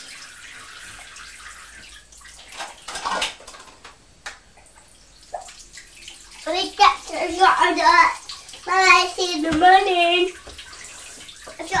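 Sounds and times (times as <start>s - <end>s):
water poured to water plants: 0.0s - 3.9s, 4.6s - 11.7s
speech: 7.7s - 10.4s.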